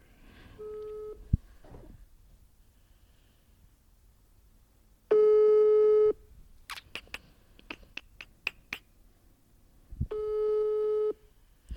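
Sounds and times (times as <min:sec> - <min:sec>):
telephone busy signal while dialling a number: 0:00.6 - 0:01.2, 0:05.1 - 0:06.2, 0:10.1 - 0:11.2.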